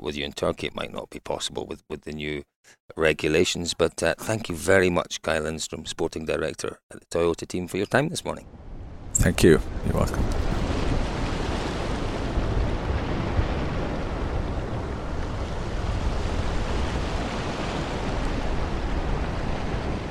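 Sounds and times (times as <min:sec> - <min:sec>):
speech: 0:00.0 - 0:10.4
churning sea aboard a ferry from Tallinn to Helsinki: 0:08.3 - 0:20.0
wind roaring aboard a ferry from Tallinn to Helsinki: 0:08.4 - 0:20.0.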